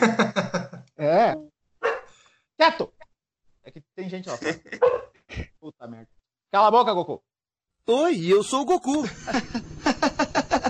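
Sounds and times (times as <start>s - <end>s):
laughter: 0.0s - 0.9s, 4.3s - 4.9s, 9.0s - 10.6s
dog barking: 1.8s - 2.1s, 4.8s - 5.2s
speech: 4.1s - 7.3s, 7.9s - 9.7s.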